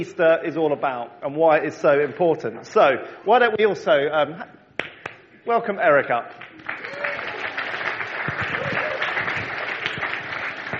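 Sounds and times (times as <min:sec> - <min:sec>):
speech: 0:00.0 - 0:04.6, 0:05.4 - 0:07.0
crowd applauding: 0:06.4 - 0:10.7.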